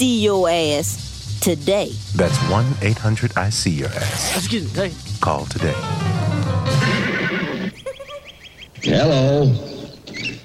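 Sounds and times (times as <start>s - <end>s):
speech: 0.0s - 6.9s, 8.8s - 9.7s
horse neighing: 6.7s - 8.2s
horse snorting: 6.8s - 7.8s.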